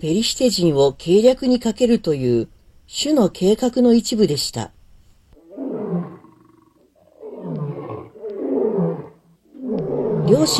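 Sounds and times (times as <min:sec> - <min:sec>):
speech: 0:00.0 - 0:04.8, 0:10.3 - 0:10.5
young lion roaring: 0:05.4 - 0:10.5.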